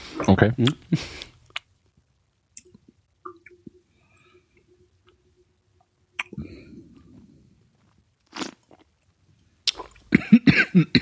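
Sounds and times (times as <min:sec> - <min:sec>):
speech: 0:00.2 - 0:01.3
person coughing after choking on wine: 0:10.1 - 0:11.0.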